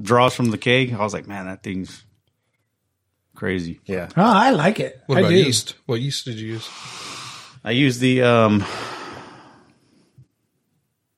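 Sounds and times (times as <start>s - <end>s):
speech: 0.0s - 2.1s, 3.4s - 9.0s
heavy breathy exhale done for dramatic effect: 6.6s - 7.6s, 8.6s - 9.7s.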